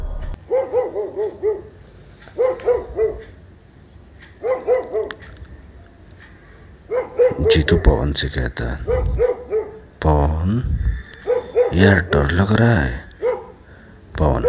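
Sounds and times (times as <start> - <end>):
dogs barking: 0.3 - 3.4, 4.3 - 5.4, 6.8 - 10.0, 11.0 - 14.4
speech: 7.7 - 9.3, 10.5 - 10.8, 11.7 - 13.0.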